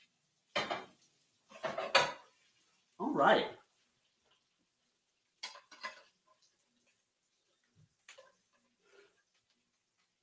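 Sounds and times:
frozen pierogi tossed into a frying pan: 0.5s - 2.4s, 5.3s - 6.9s, 8.0s - 10.2s
speech: 3.2s - 3.6s.

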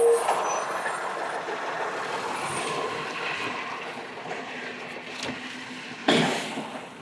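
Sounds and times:
garbage truck rumbling while collecting trash in an alley in Chelan: 0.0s - 6.9s.

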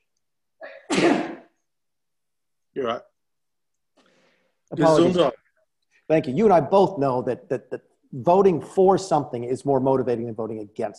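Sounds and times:
person sneezing: 0.6s - 1.6s
speech: 2.8s - 3.1s, 4.7s - 5.4s, 6.1s - 10.9s.

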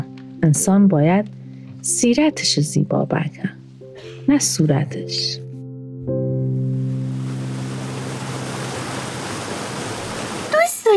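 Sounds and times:
speech: 0.0s - 3.6s, 4.2s - 5.4s
rushing water of a waterfall in the countryside around Khorramabad: 6.9s - 10.9s.

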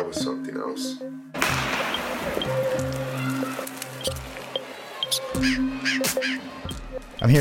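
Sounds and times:
speech: 0.0s - 3.0s, 5.4s - 7.3s
rushing watery background: 1.4s - 5.4s
crows cawing: 2.0s - 6.6s.

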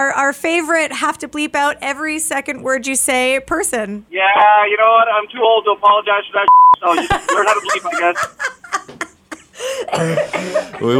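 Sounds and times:
speech: 0.0s - 8.6s, 9.6s - 10.9s
laughter: 6.8s - 10.9s
person coughing: 9.4s - 10.9s
raspy wheezy breath: 9.5s - 10.8s.

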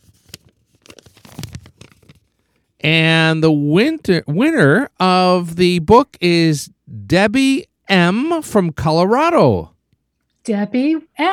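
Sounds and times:
paper tearing: 0.0s - 2.3s
slip of paper pulled from a pile: 0.0s - 2.7s
speech: 2.8s - 9.7s, 10.4s - 11.3s.

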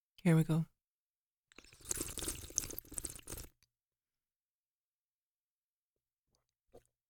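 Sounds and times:
person slurping wine through the lips while tasting it: 1.5s - 3.6s.

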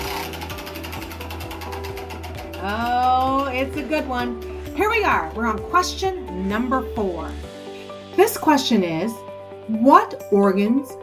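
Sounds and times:
prize wheel spinning with rapid mechanical clicks: 0.0s - 3.9s
speech: 2.6s - 7.5s, 8.2s - 11.0s.

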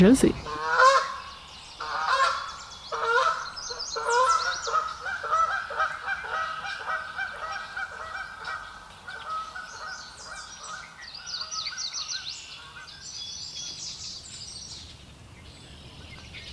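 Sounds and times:
speech: 0.0s - 0.6s
Canada geese honking: 0.1s - 11.8s.

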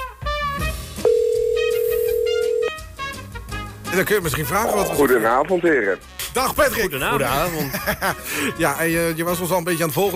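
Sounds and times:
telephone dial tone while a call is placed: 1.1s - 2.8s
speech: 4.0s - 10.1s
laughter: 7.3s - 8.6s.

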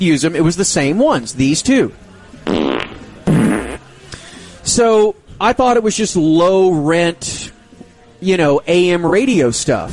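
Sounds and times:
speech: 0.0s - 2.6s, 4.7s - 7.6s, 8.2s - 9.9s
fart sound effect from effects CD: 2.4s - 3.8s.

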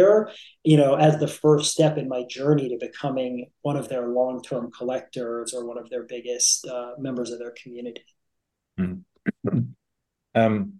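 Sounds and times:
speech: 0.0s - 8.2s, 8.8s - 9.8s, 10.4s - 10.7s
person giving short throaty coughs: 9.3s - 9.7s.

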